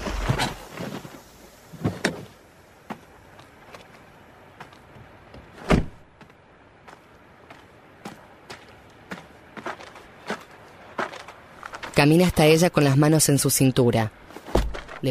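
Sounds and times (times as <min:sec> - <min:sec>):
clicks, rattles and knocks of things moved inside a car trunk: 0:00.0 - 0:02.4
speech: 0:12.0 - 0:14.2.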